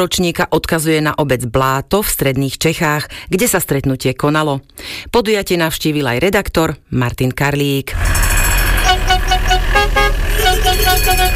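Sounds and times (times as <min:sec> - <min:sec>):
speech: 0:00.0 - 0:08.3
old camper van tram-style bell ringing: 0:08.0 - 0:11.3
steady low camper van engine rumble: 0:08.0 - 0:11.3.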